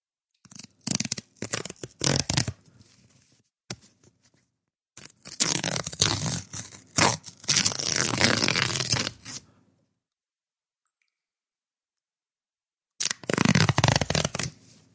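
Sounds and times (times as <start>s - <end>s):
paper envelope containing a check tearing open: 0.4s - 2.6s, 5.0s - 9.4s, 13.0s - 14.6s.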